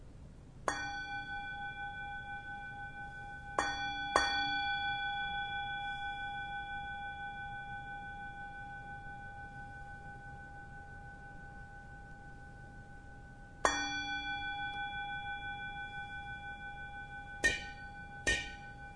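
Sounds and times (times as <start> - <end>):
meditation bell struck and ringing: 0.7 - 18.9.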